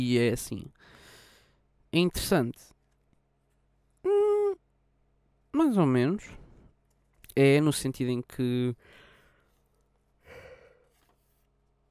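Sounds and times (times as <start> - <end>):
speech: 0.0 - 1.0, 1.9 - 2.7, 5.5 - 6.4, 7.4 - 9.0
person yawning: 4.0 - 4.6.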